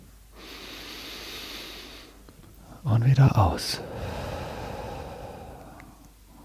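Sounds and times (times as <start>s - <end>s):
deep breath drawn in through the nose during guided breathing exercise: 0.3s - 2.2s, 3.8s - 6.4s
speech: 2.8s - 3.9s.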